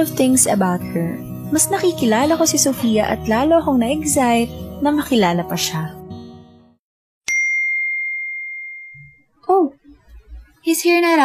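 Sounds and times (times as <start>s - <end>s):
speech: 0.0s - 6.0s, 10.8s - 11.2s
phone text message notification ding: 7.3s - 9.2s.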